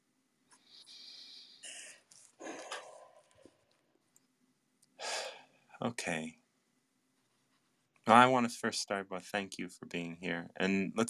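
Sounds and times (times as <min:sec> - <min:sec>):
person taking a deep breath: 0:00.7 - 0:02.8, 0:05.0 - 0:05.6
speech: 0:05.8 - 0:06.4, 0:08.1 - 0:11.0.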